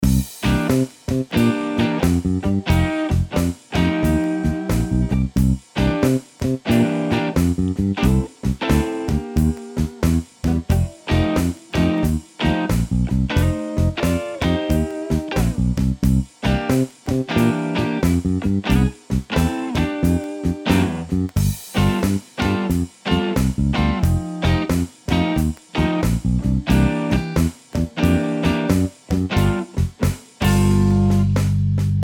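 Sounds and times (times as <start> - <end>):
blues licks backing track loop: 0.0 - 32.0.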